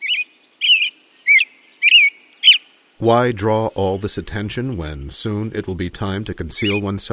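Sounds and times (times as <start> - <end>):
male American robin caroling clear liquid warbled phrases in the evening: 0.0 - 4.5, 6.1 - 7.1
speech: 3.0 - 7.1.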